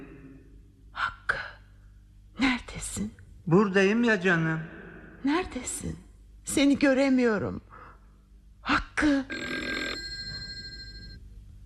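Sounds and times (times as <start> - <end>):
speech: 3.0 - 7.7, 9.0 - 9.5
telephone bell ringing: 9.6 - 11.3.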